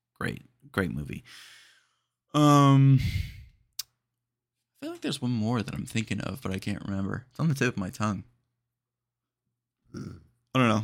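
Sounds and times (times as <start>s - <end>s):
speech: 0.2s - 1.6s, 2.3s - 3.3s, 4.9s - 8.3s, 9.9s - 10.8s
short throaty burp: 9.9s - 10.3s.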